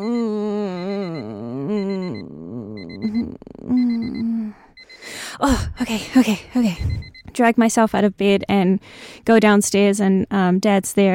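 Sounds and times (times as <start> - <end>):
alarm clock beeping: 0.0 - 7.9
speech: 5.4 - 11.1.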